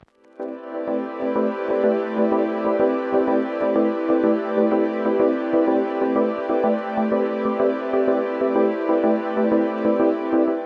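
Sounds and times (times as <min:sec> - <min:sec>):
synthesizer: 0:00.0 - 0:10.6.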